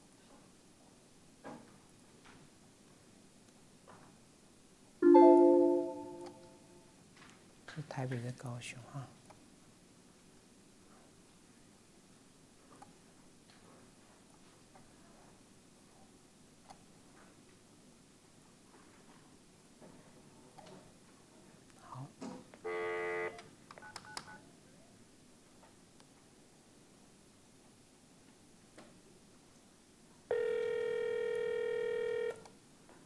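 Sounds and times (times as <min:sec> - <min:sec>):
telephone ringing with incoming call: 0:05.0 - 0:06.5, 0:22.7 - 0:23.4, 0:30.3 - 0:32.4
speech: 0:07.8 - 0:09.2.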